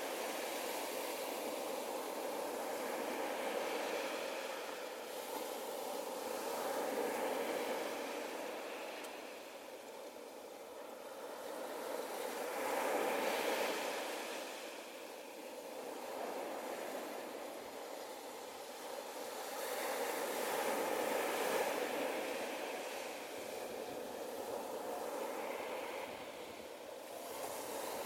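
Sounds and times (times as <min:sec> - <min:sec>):
ocean waves washing in a steady dense roar: 0:00.0 - 0:28.0.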